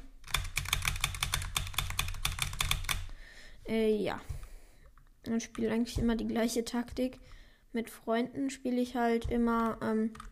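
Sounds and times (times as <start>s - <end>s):
computer keyboard keys clacking during gameplay: 0.2s - 3.1s
speech: 3.7s - 4.4s, 5.2s - 10.3s.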